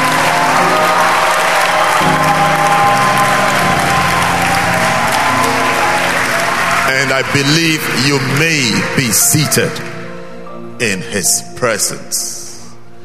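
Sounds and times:
large crowd applauding: 0.0 - 10.1
sustained organ or keyboard chords: 0.0 - 13.0
speech: 7.2 - 10.0, 10.8 - 12.4.

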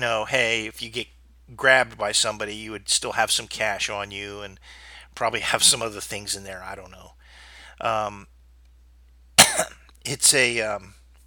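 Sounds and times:
speech: 0.0 - 8.3, 9.6 - 11.0
person coughing: 9.4 - 9.8.

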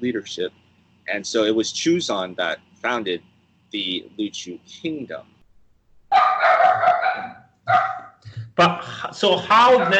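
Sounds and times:
speech: 0.0 - 5.3, 8.6 - 9.9
puppies barking excitedly: 6.1 - 8.2, 9.6 - 9.9.

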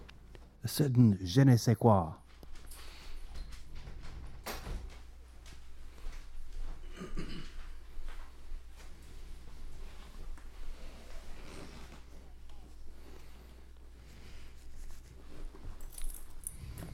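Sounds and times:
speech: 0.7 - 2.2
dog's metal collar tags jingling: 15.8 - 16.8.

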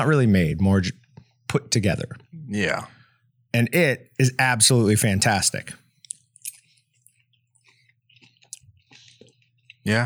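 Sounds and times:
speech: 0.0 - 5.8, 9.8 - 10.0
person chewing a bite of food: 6.0 - 9.9.

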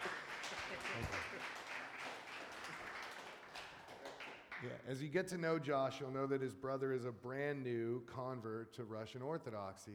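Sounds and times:
crowd applauding: 0.0 - 4.8
speech: 4.6 - 9.9.

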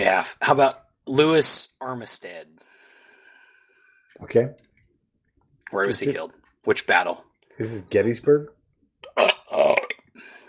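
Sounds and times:
speech: 0.1 - 2.7, 4.2 - 4.7, 5.7 - 10.3
loud gurgling burp: 9.0 - 10.2.

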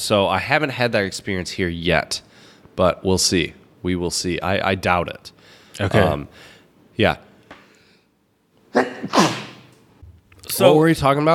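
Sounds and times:
speech: 0.0 - 7.3, 8.7 - 9.4, 10.5 - 11.3
person sneezing: 8.7 - 9.7.

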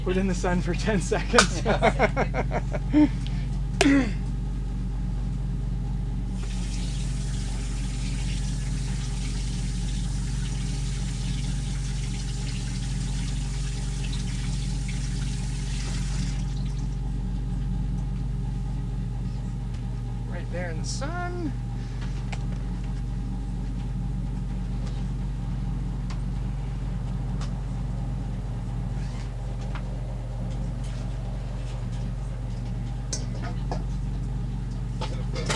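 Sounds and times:
speech: 0.0 - 4.2, 20.8 - 21.6
low mechanical hum: 0.0 - 35.5
laughter: 1.0 - 4.2
water pouring over a frozen container to thaw it: 6.4 - 16.9.

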